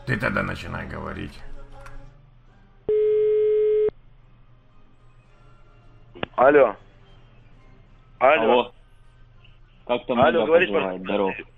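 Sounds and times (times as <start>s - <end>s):
speech: 0.1s - 1.5s, 6.4s - 6.8s, 8.2s - 8.8s, 9.9s - 11.5s
steady telephone call tone while dialing: 2.9s - 3.9s.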